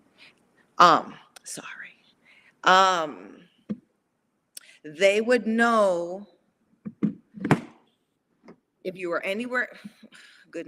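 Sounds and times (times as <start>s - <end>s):
speech: 0.8s - 1.8s, 2.6s - 3.5s, 4.8s - 6.3s, 8.8s - 10.6s
door slamming shut: 6.9s - 7.8s.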